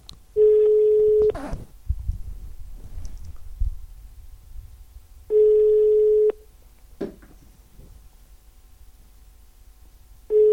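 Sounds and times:
low noise: 0.0 - 10.5
telephone ringing unanswered after dialing: 0.4 - 1.4, 5.3 - 6.4, 10.3 - 10.5.

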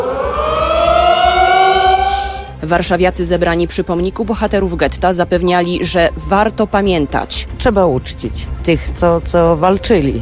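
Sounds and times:
air-raid alarm sirens sounding across Warsaw to commemorate the ghetto uprising: 0.0 - 2.6
speech: 2.6 - 10.2.

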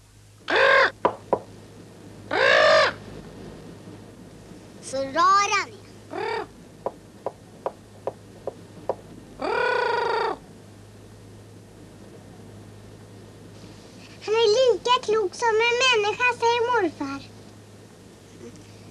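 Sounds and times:
faint low hum: 0.0 - 18.8
parrot squawking and talking: 0.5 - 1.0, 2.3 - 3.0.

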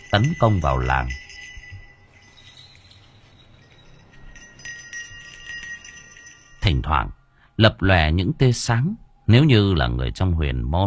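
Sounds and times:
hand bell shaken by a figure in a black ritual robe: 0.0 - 6.9
speech: 0.1 - 1.2, 6.8 - 10.8.

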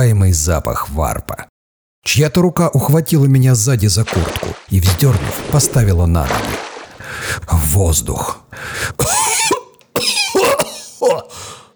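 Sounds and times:
speech: 0.0 - 9.5
person coughing up thick phlegm: 8.9 - 11.5.

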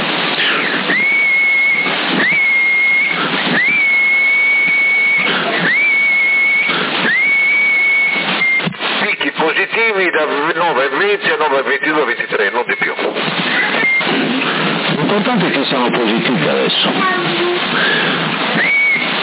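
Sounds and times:
harsh bursts of CB radio static: 0.0 - 19.2
whistle tones sent over CB radio: 0.4 - 8.8, 12.1 - 14.2, 18.5 - 19.2
speech: 10.7 - 12.8, 15.2 - 18.0.

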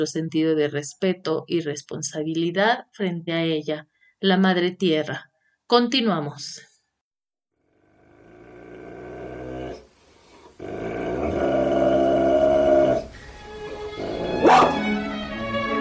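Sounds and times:
speech: 0.0 - 6.7
dogs growling: 7.9 - 14.9
dogs barking: 13.8 - 15.0.

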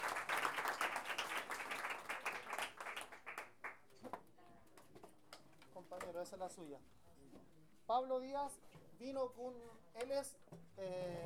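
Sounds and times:
audience applause at a book launch and cultural event: 0.0 - 3.7
speech: 6.2 - 11.2.

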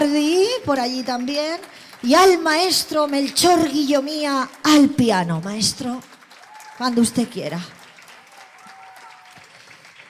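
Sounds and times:
speech: 0.0 - 6.1, 6.8 - 7.8
audience applause at a stage presentation: 6.0 - 10.0.

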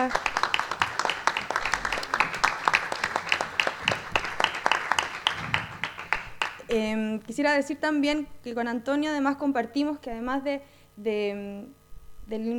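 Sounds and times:
speech: 0.0 - 0.3, 6.7 - 12.5
audience applause at an arts archive policy conference: 0.0 - 6.7.

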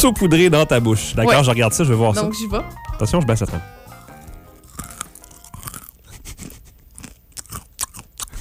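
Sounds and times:
speech: 0.0 - 3.8
chewing a crunchy snack mix with dark chocolate: 4.6 - 8.3.

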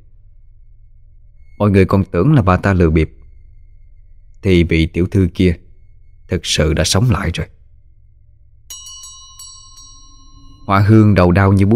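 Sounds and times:
speech: 1.6 - 3.2, 4.4 - 5.6, 6.3 - 7.6, 10.7 - 11.7
bronze bell jingling: 8.7 - 11.7.

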